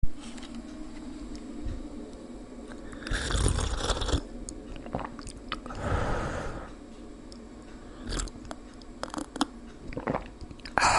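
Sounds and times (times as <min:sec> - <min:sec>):
person drinking tea: 0:02.8 - 0:06.6, 0:08.0 - 0:10.9.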